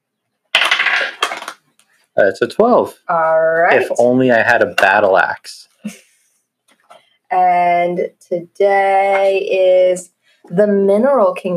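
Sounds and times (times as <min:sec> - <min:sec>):
twelve-sided die rolled on a tabletop: 0:00.6 - 0:01.6
speech: 0:02.2 - 0:06.1, 0:07.3 - 0:11.5.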